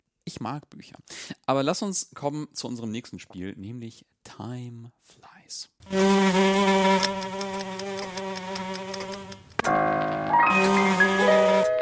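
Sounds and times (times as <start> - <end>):
speech: 0.4 - 7.2
fly buzzing: 5.8 - 9.6, 10.5 - 11.7.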